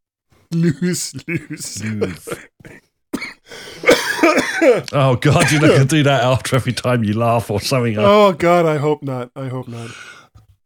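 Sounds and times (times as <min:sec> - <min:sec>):
speech: 0:00.5 - 0:02.8, 0:04.2 - 0:10.1
person coughing: 0:00.6 - 0:05.9.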